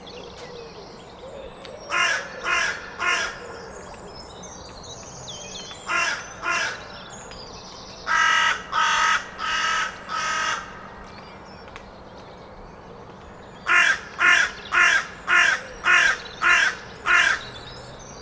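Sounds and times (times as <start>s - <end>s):
Carrion crow (Corvus corone) cawing: 1.9s - 3.4s, 5.9s - 6.8s, 8.1s - 11.0s, 13.7s - 17.5s.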